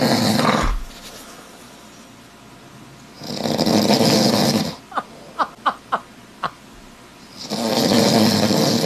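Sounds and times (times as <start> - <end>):
man snoring: 0.0 - 0.8, 3.2 - 5.3, 7.4 - 8.8.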